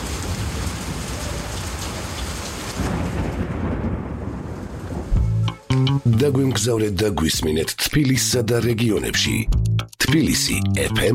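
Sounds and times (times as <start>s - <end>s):
heavy rain pouring down: 0.0s - 5.2s
low rumbling thunder: 0.0s - 5.5s
speech: 5.8s - 11.1s.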